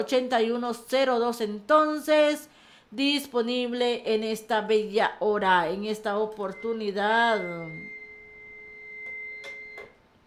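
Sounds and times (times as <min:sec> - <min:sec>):
speech: 0:00.0 - 0:08.0
electronic telephone ring tone: 0:06.3 - 0:10.0.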